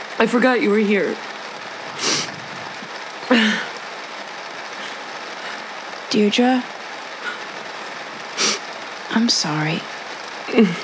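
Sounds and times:
heavy rain pouring in a dense hiss: 0.0s - 10.8s
speech: 0.2s - 1.3s, 3.3s - 3.7s, 6.1s - 6.7s, 9.2s - 9.9s, 10.5s - 10.8s
short breathy bursts: 1.7s - 3.8s, 4.6s - 5.9s, 7.1s - 8.9s.

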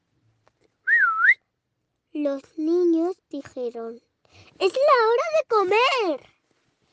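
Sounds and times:
person whistling one short clear note: 0.9s - 1.4s
speech: 2.2s - 6.3s.

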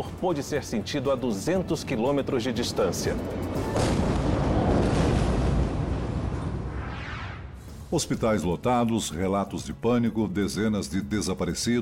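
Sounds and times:
speech: 0.0s - 4.2s, 7.9s - 11.8s
huge violent explosion in a city rumbling: 3.4s - 7.7s.

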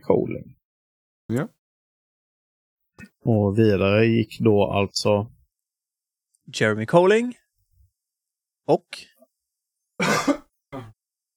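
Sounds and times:
speech: 0.0s - 0.6s, 1.3s - 1.6s, 3.0s - 5.4s, 6.5s - 7.4s, 8.7s - 9.1s
person coughing: 10.0s - 11.0s.

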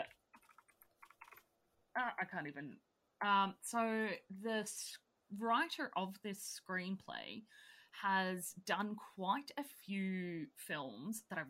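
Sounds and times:
typing on a computer keyboard: 0.4s - 1.4s
speech: 2.0s - 11.4s.

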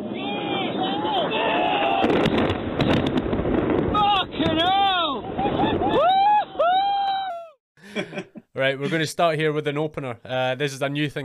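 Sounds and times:
bombs dropping with whistle-like tones: 0.0s - 7.6s
bombs exploding with broadband blasts and crackling bursts: 1.9s - 6.0s
laughter: 7.8s - 9.0s
speech: 8.6s - 11.2s.

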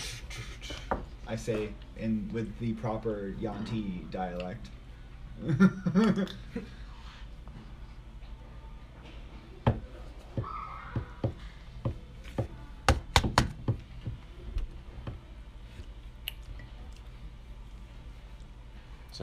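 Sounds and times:
speech: 1.3s - 4.8s, 5.4s - 6.8s
hard knocking and pounding on a door: 9.6s - 14.2s.

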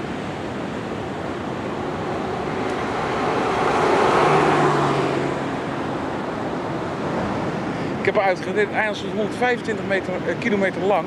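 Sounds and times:
car driving along a sandy beach on an island: 0.0s - 8.8s
surf: 0.0s - 11.0s
wind: 0.0s - 11.0s
speech: 8.2s - 11.0s.

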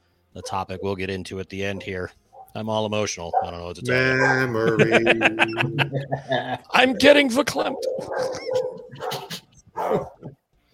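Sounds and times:
dog barking excitedly: 0.4s - 1.0s, 1.6s - 2.6s, 3.2s - 4.6s, 7.7s - 10.2s
speech: 0.4s - 10.3s
laughter: 3.8s - 10.3s.

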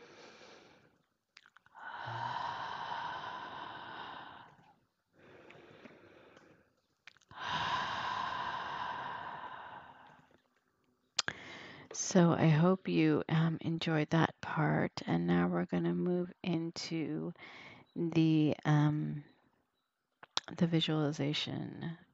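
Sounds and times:
deep breathing during a guided relaxation session: 0.0s - 1.1s, 1.7s - 10.6s, 11.3s - 12.0s, 17.4s - 18.0s
speech: 12.0s - 19.3s, 20.5s - 22.0s.

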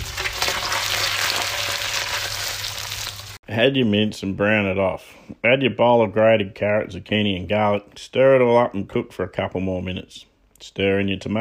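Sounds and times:
onions sizzling in hot olive oil in a pan: 0.0s - 3.4s
speech: 3.5s - 11.3s.

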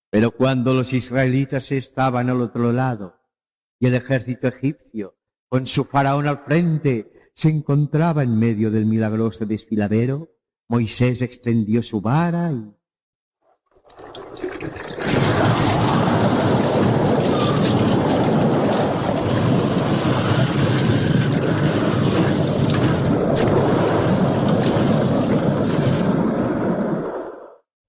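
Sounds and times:
speech: 0.1s - 3.2s, 3.8s - 12.8s
walls of sea water crashing together: 13.9s - 27.2s.

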